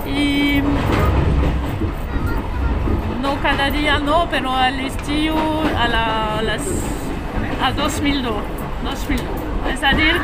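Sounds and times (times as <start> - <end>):
red train rumbling along rails: 0.0 - 10.2
train wheels clattering rhythmically: 0.0 - 10.2
speech: 3.5 - 7.0, 7.6 - 10.2.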